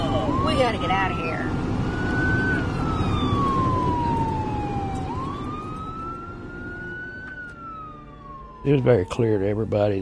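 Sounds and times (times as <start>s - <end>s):
fire truck siren wailing during a fire: 0.0s - 10.0s
heavy rumble of fire truck engine and road noise: 0.0s - 10.0s
speech: 0.6s - 1.6s, 8.6s - 10.0s.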